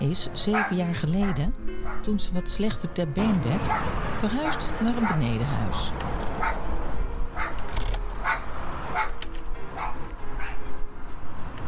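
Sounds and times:
speech: 0:00.1 - 0:06.2
dog barking: 0:00.5 - 0:02.1, 0:03.6 - 0:05.4, 0:06.4 - 0:06.6, 0:07.4 - 0:07.6, 0:08.2 - 0:09.2, 0:09.8 - 0:10.6.

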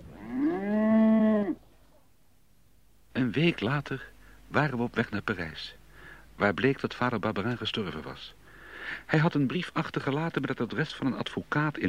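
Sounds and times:
cow mooing: 0:00.0 - 0:01.6
speech: 0:03.3 - 0:05.8, 0:06.4 - 0:11.8.

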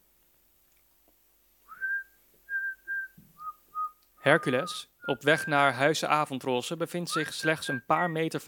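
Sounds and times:
woman whistling a tune while walking down a hill: 0:01.7 - 0:05.5, 0:07.2 - 0:08.1
speech: 0:04.2 - 0:08.4.

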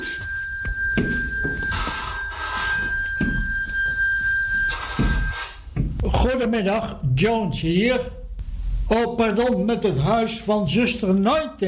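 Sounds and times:
old-style telephone bell ringing: 0:00.0 - 0:05.7
speech: 0:06.4 - 0:08.2, 0:08.9 - 0:11.6.

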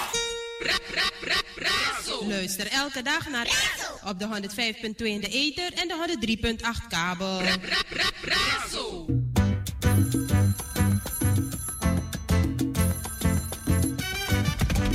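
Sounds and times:
speech: 0:00.6 - 0:09.2
dense rhythmic musical backing: 0:08.4 - 0:14.9
telephone bell ringing: 0:09.8 - 0:14.6.

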